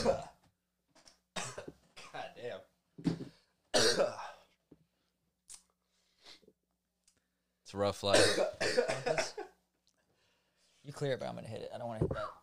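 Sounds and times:
speech: 0.0s - 0.3s, 7.7s - 9.5s, 10.9s - 12.4s
harsh coughing fit after a smoke hit: 0.0s - 0.4s, 1.4s - 2.3s, 3.7s - 4.5s, 8.1s - 9.6s, 12.0s - 12.4s.

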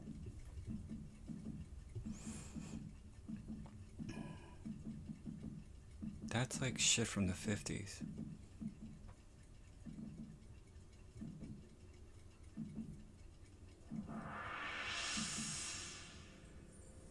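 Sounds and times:
soft low thumps: 0.0s - 6.9s, 8.0s - 10.5s, 11.1s - 11.8s, 12.4s - 13.2s, 13.8s - 14.4s
wind-up alarm clock ticking: 0.0s - 15.6s
speech: 6.4s - 8.2s
bright rising whoosh: 14.0s - 16.8s.

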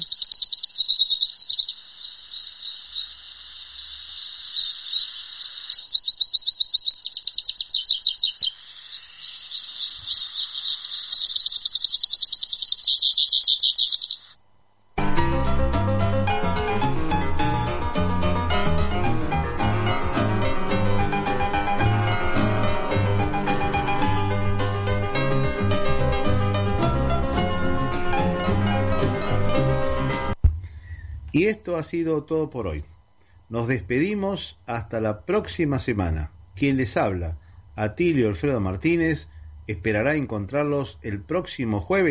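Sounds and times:
hooded siskin singing: 0.0s - 14.4s
speech: 0.1s - 1.0s, 31.6s - 32.9s, 33.5s - 42.1s
music: 15.0s - 31.0s.

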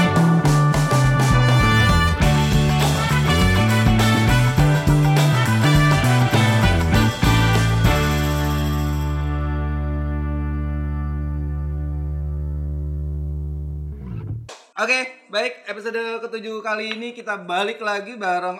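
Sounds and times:
bouncing bass line: 0.0s - 8.6s, 11.5s - 14.5s
short loud instrumental podcast intro jingle: 0.9s - 10.0s
bright layered melody: 0.9s - 11.8s
speech: 14.8s - 18.5s.

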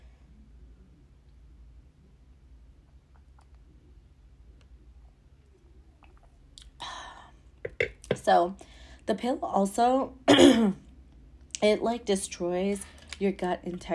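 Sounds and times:
person sipping a drink of water: 5.9s - 6.8s
speech: 7.8s - 10.8s, 11.6s - 13.9s.

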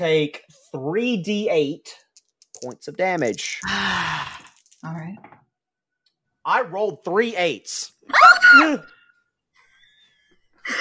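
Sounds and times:
speech: 0.0s - 2.0s, 2.6s - 5.4s, 6.4s - 9.0s
person screaming: 3.6s - 4.5s, 8.1s - 8.9s.

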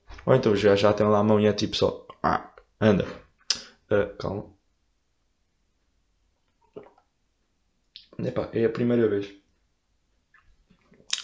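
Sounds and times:
speech: 0.2s - 3.2s, 3.9s - 4.6s, 8.2s - 9.4s
faint wet mouth sounds sipping hot coffee: 6.5s - 7.1s, 10.3s - 11.2s.

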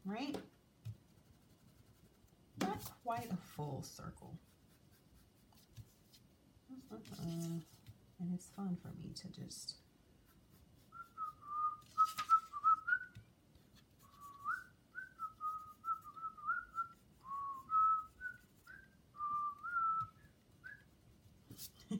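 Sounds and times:
speech: 0.1s - 0.5s, 3.0s - 4.5s, 6.7s - 9.8s
person whistling a simple melodic tune: 11.0s - 13.2s, 14.1s - 20.9s.

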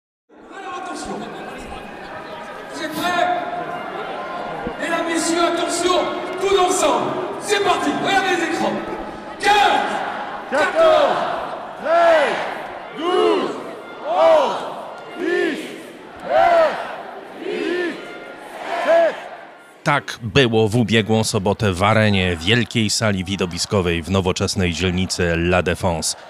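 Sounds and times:
crowd roaring and cheering at an election rally in an arena in Paris: 0.3s - 26.2s
crowd chanting in unison in a large hall: 1.0s - 19.8s, 25.9s - 26.2s
speech: 5.2s - 9.8s, 10.5s - 13.3s, 19.9s - 26.2s.

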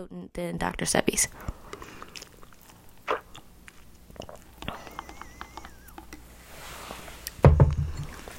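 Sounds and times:
speech: 0.0s - 1.6s
person sipping and slurping sea moss and mint tea: 1.4s - 7.4s.

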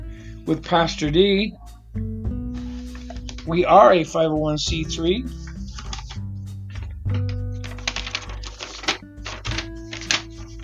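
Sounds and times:
speech: 0.5s - 2.2s, 3.4s - 5.4s
paper sheets rustling as they are pulled out: 2.6s - 3.6s, 5.3s - 10.6s.

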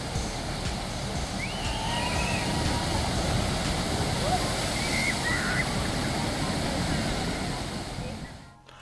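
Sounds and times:
water splashing from a log flume ride at a theme park: 0.0s - 8.7s
faint voices: 2.0s - 8.7s.

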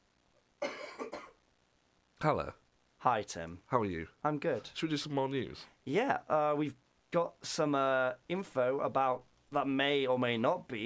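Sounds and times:
person coughing: 0.6s - 1.4s
speech: 2.2s - 10.8s.

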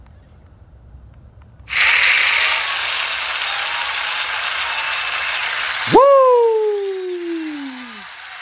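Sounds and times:
applause: 1.7s - 8.4s.

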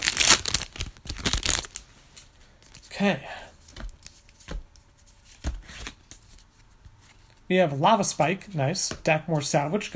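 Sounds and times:
trading card booster pack wrapper crinkling and tearing as it is opened: 0.0s - 1.8s
speech: 3.0s - 3.4s, 7.5s - 9.9s.

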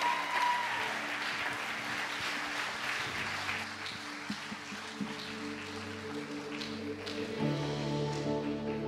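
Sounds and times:
audience applause: 0.0s - 7.6s
sustained organ or keyboard chords: 4.4s - 8.8s.

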